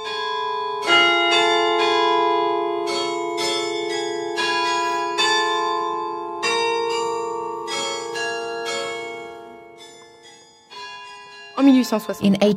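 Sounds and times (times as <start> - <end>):
church carillon bells ringing: 0.0 - 12.5
speech: 11.8 - 12.5.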